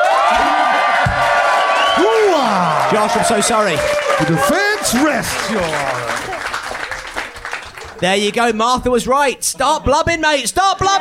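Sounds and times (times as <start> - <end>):
audience at a mock-trial debate applauding and cheering: 0.0 - 8.4
whoops and whistles: 1.6 - 2.6
speech: 2.9 - 6.6, 8.0 - 10.9.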